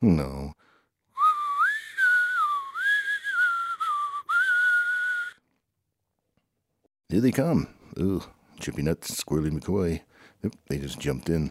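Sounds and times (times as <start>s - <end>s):
speech: 0.0s - 0.6s, 7.1s - 11.5s
person whistling a wavering tuneful melody: 1.2s - 5.4s.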